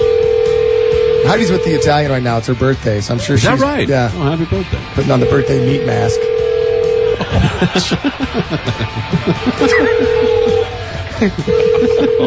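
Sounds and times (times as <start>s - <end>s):
telephone dialing beeps: 0.0s - 2.1s, 5.1s - 7.2s, 11.5s - 12.2s
telephone steady electronic tone: 0.0s - 2.1s, 5.1s - 7.3s, 9.9s - 10.7s, 11.5s - 12.2s
speech: 1.2s - 6.3s, 7.2s - 12.2s
laughter: 7.1s - 12.2s.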